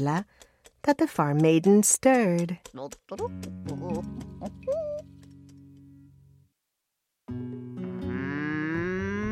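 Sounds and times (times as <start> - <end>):
speech: 0.0 - 4.8
cow mooing: 7.9 - 9.3.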